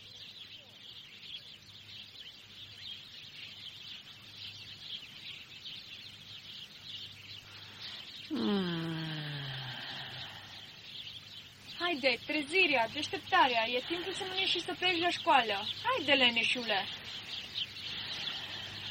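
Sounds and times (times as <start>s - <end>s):
chorus of small birds chirping and twittering: 0.0s - 18.8s
drawn-out falling voice-like tone: 8.3s - 9.8s
speech: 12.0s - 17.4s.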